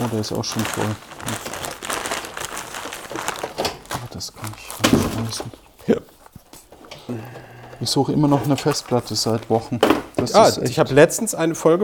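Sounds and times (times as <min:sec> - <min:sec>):
paper being crumpled and crinkled: 0:00.0 - 0:06.7, 0:08.2 - 0:09.9
speech: 0:00.1 - 0:01.6, 0:04.2 - 0:06.1, 0:07.1 - 0:11.8.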